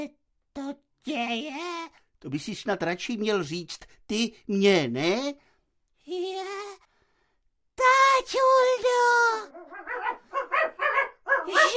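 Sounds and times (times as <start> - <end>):
speech: 0.0 - 5.5, 6.1 - 6.8, 7.8 - 10.2
dog greeting its owner barking and yipping excitedly: 9.5 - 11.7.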